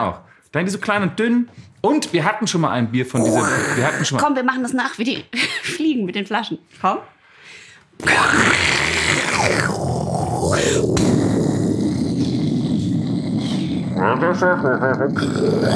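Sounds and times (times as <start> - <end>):
speech: 0.0 - 7.2, 8.0 - 8.8, 14.0 - 15.7
person imitating a hissing tiger roar: 3.2 - 4.3, 8.0 - 15.7.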